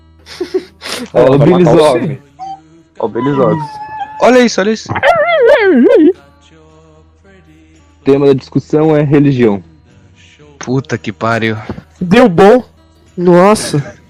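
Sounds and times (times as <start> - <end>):
speech: 0.2 - 2.3, 3.0 - 6.2, 8.0 - 9.7, 10.6 - 14.0
dog whining and yelping: 2.4 - 2.6, 3.2 - 6.1.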